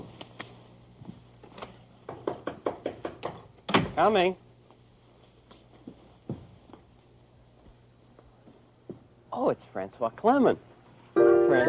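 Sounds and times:
knocking on a door: 2.1 - 3.9
speech: 4.0 - 4.4, 9.8 - 10.7, 11.5 - 11.6.

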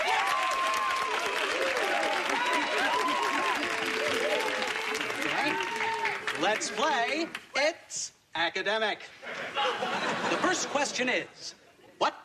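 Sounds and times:
overlapping cheerful voices and shouts: 0.0 - 6.6
room full of people applauding: 0.0 - 7.4
speech: 6.5 - 12.2
laughter: 9.2 - 12.0.

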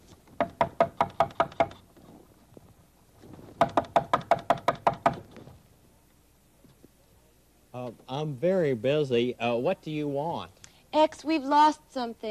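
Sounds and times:
rapid sharp knocking on a door: 0.4 - 1.8, 3.6 - 5.3
speech: 7.9 - 12.2.

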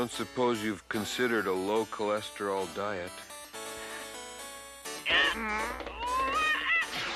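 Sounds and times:
speech: 0.2 - 3.3
several cats meowing and yowling: 6.0 - 7.1.

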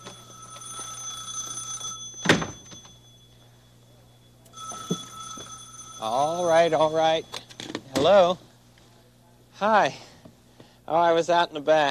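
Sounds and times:
telephone ringing with a shrill electric tone: 0.0 - 8.3
speech: 6.0 - 7.4, 8.0 - 8.4, 9.6 - 10.1, 10.9 - 11.8.

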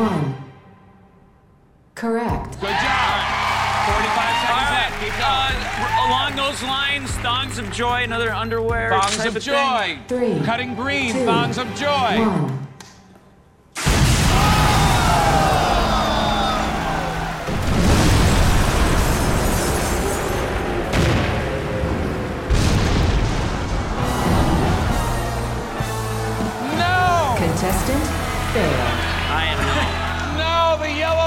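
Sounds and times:
speech: 0.0 - 0.4, 6.5 - 12.6
excited voices: 2.6 - 8.2, 14.3 - 17.7, 24.0 - 31.2
game-show bomb explosion effect: 13.8 - 25.8.

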